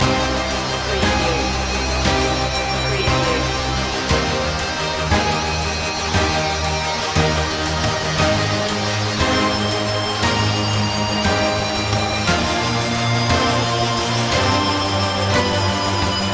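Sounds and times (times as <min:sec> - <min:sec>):
electric guitar waltz: 0:00.0 - 0:16.3.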